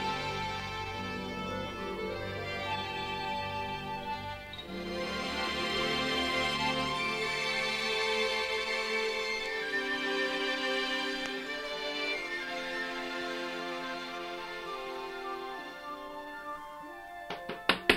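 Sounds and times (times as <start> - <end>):
sustained musical tone: 0.0 - 17.9
loud knocks on the door of a house: 17.3 - 17.9.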